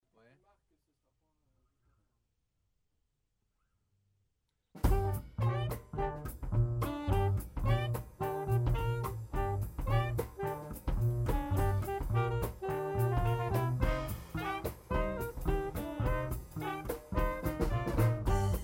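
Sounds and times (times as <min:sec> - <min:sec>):
New Orleans riff: 0:04.8 - 0:18.6.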